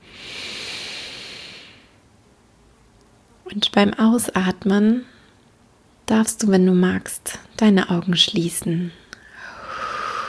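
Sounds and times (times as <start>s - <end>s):
deep inhale through the mouth into the belly: 0.0s - 2.0s, 9.2s - 10.2s
speech: 3.5s - 5.1s, 6.1s - 9.0s.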